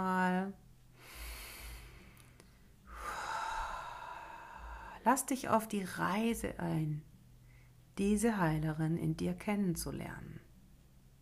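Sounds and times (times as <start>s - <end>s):
deep inhalation: 1.0s - 5.0s
speech: 5.0s - 7.1s, 8.0s - 10.4s.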